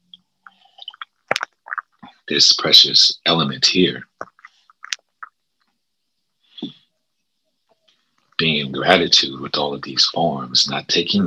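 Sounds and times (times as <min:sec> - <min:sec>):
soft slurping sips of water: 0:00.0 - 0:02.6, 0:03.8 - 0:05.4
short gulping swallow: 0:00.4 - 0:02.5, 0:03.8 - 0:05.4
speech: 0:02.3 - 0:04.1, 0:08.7 - 0:11.2.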